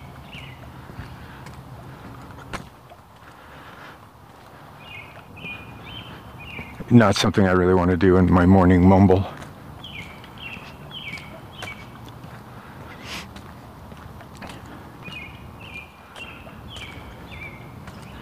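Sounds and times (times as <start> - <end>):
bird chirping: 0.0 - 2.1, 4.5 - 13.0, 14.5 - 18.2
steady rumbling outdoor noise: 0.0 - 18.2
speech: 6.9 - 9.4.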